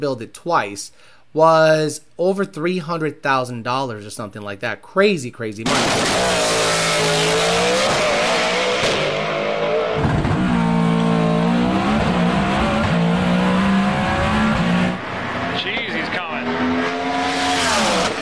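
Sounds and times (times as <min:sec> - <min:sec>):
speech: 0:00.0 - 0:08.1
race car engine revving and shifting: 0:05.7 - 0:18.1.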